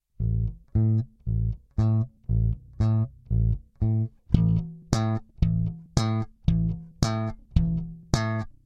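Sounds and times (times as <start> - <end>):
electric bass single note played with fingers then slapped: 0.2 - 8.3.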